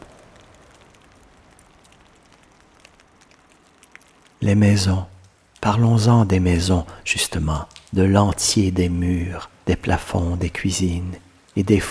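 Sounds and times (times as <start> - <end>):
light rain falling: 0.0 - 11.8
speech: 4.4 - 11.8.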